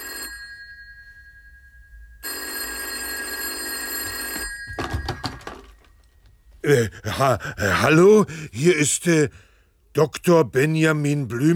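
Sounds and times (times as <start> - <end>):
telephone bell ringing: 0.0 - 6.1
sharp clattering knocks: 4.6 - 6.0
speech: 6.6 - 11.5.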